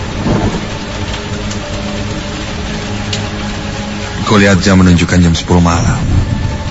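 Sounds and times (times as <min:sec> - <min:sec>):
light rain falling on a road: 0:00.0 - 0:06.6
speech: 0:04.3 - 0:06.1.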